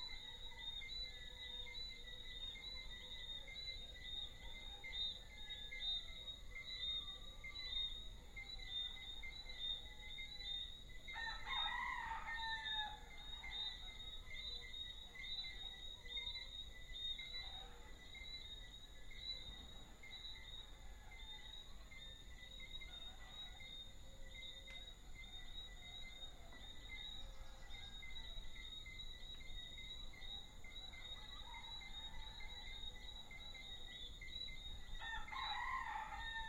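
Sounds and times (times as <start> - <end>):
small frogs chirping and whistling in an evening chorus in Guadeloupe: 0.0 - 36.4.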